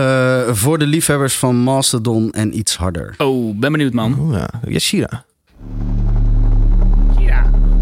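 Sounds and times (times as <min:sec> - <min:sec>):
speech: 0:00.0 - 0:05.7
higher whine: 0:05.5 - 0:07.8
deep helicopter-like rumble of metal track: 0:05.6 - 0:07.8.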